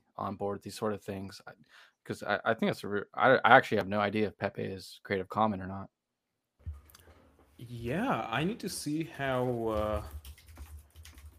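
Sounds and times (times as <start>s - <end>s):
speech: 0.2s - 6.0s, 7.6s - 10.2s
computer keyboard clacking: 9.2s - 11.3s.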